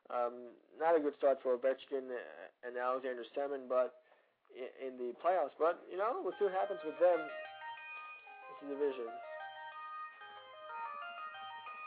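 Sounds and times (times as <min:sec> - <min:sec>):
speech: 0:00.1 - 0:07.5, 0:08.6 - 0:09.3
cell phone ringtone: 0:06.3 - 0:11.8.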